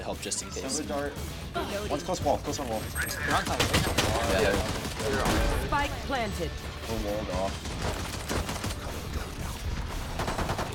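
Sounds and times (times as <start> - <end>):
speech: 0.1 - 8.1
gunfire in a shooter video game: 3.3 - 5.7, 7.3 - 10.7.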